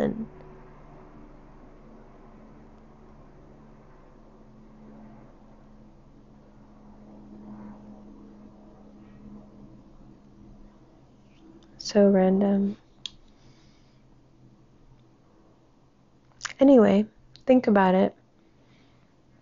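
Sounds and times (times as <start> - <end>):
several helicopters flying over a building: 0.0 - 12.8
speech: 11.9 - 12.8, 16.6 - 18.2.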